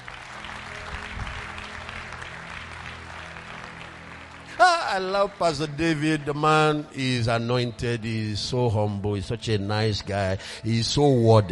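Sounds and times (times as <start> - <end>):
crowd applauding with many hands clapping: 0.0 - 6.9
speech: 4.6 - 11.5.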